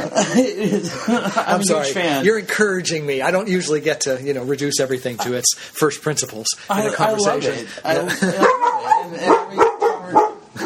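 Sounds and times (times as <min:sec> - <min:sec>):
laughter: 0:00.0 - 0:02.0, 0:07.8 - 0:09.0
speech: 0:00.2 - 0:09.6
dog barking: 0:08.4 - 0:10.6.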